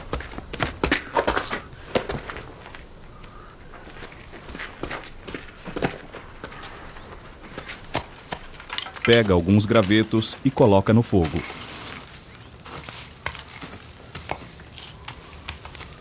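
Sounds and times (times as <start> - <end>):
man's running footsteps heading into a mud hut: 0.0 - 15.9
speech: 9.0 - 11.6.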